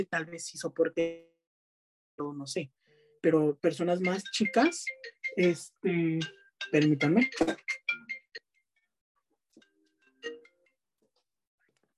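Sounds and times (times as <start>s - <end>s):
speech: 0.0s - 1.3s, 2.2s - 7.8s
phone ringtone for an incoming call, bright melodic beeps: 4.0s - 5.6s, 6.2s - 8.5s.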